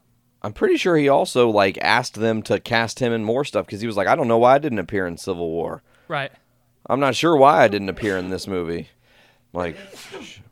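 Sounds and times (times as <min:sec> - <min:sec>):
speech: 0:00.4 - 0:10.5
sneeze: 0:08.0 - 0:08.3, 0:09.7 - 0:10.5.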